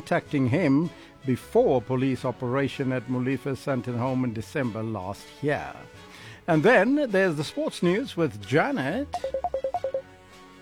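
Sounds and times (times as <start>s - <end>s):
speech: 0.0s - 9.6s
telephone line ringing with short electronic tone pulses: 9.2s - 10.0s.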